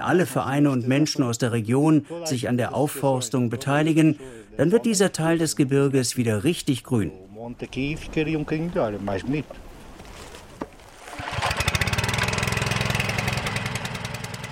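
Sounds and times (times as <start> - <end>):
speech: 0.0 - 9.6
small water pump motor pumping water through a long hose: 11.0 - 14.4.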